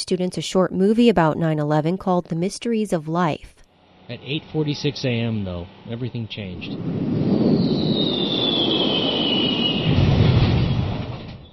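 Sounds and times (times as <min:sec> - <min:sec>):
speech: 0:00.1 - 0:07.2
airplane engine roar with a high whine in an animated educational video: 0:03.8 - 0:11.4.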